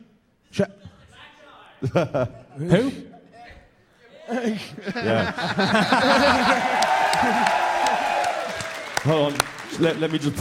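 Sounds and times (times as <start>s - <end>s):
speech: 0.6s - 0.9s, 1.8s - 3.2s, 4.3s - 7.6s, 9.0s - 10.3s
people laughing: 1.8s - 8.2s
crowd cheering at a prize-giving event: 4.9s - 10.3s
people clapping: 5.2s - 10.3s.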